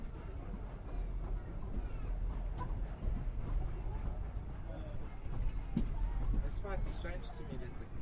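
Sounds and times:
heavy train engine rumble labouring up a gradient: 0.0 - 7.9
speech: 6.7 - 7.9.

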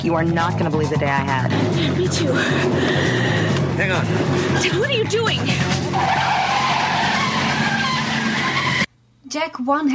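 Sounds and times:
speech: 0.0 - 6.4, 9.3 - 9.9
car tire squeal during a spinning skid: 5.4 - 8.9.

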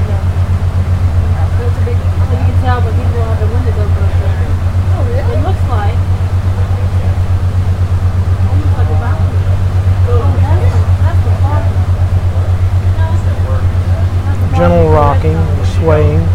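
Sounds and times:
boat engine droning on a river: 0.0 - 16.3
voices chattering: 0.0 - 16.3.

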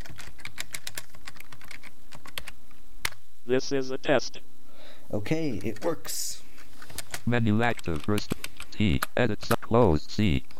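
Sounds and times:
typing on a computer keyboard at a terminal: 0.0 - 3.2, 6.9 - 8.7
speech: 3.5 - 6.4, 7.2 - 10.5.

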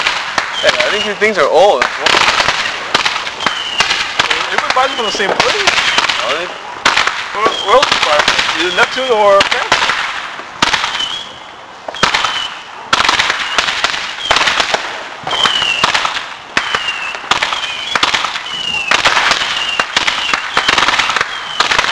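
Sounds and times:
fireworks exploding: 0.0 - 21.9
high whistling tones of fireworks: 0.5 - 1.7, 2.5 - 6.8, 7.4 - 7.9, 10.9 - 14.5, 15.2 - 16.0, 16.6 - 21.8
speech: 0.6 - 2.5, 4.8 - 6.6, 7.4 - 9.8.

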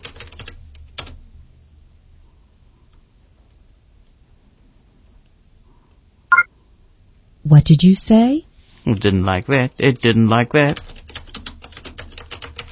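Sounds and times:
typing on a computer keyboard: 0.0 - 1.2, 10.6 - 12.7
speech: 7.5 - 10.9.

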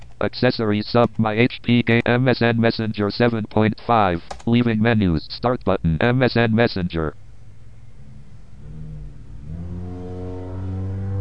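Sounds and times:
speech: 0.2 - 7.2
car in street traffic accelerating past, heard through an open window: 8.0 - 11.2.

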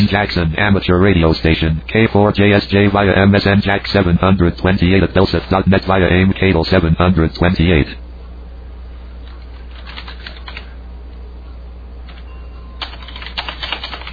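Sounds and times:
speech: 0.0 - 8.0
steady low hum: 0.0 - 14.1
typing on a computer keyboard: 9.3 - 10.7, 12.8 - 14.1.

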